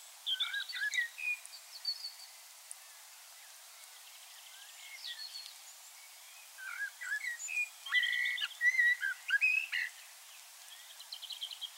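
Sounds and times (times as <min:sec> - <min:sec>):
common blackbird fluted warbling song: 0:00.0 - 0:11.7.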